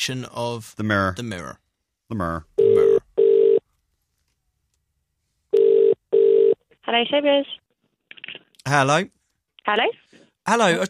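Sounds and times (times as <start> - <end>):
speech: 0.0 - 2.8, 6.9 - 7.6, 8.7 - 10.8
telephone ringback tone: 2.6 - 3.6, 5.5 - 6.6.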